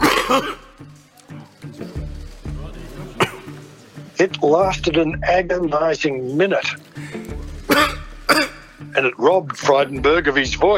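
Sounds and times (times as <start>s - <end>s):
dry hacking cough: 0.0s - 0.8s, 3.2s - 3.6s, 7.7s - 8.8s
speech: 0.3s - 1.0s, 4.2s - 6.8s, 9.0s - 10.7s.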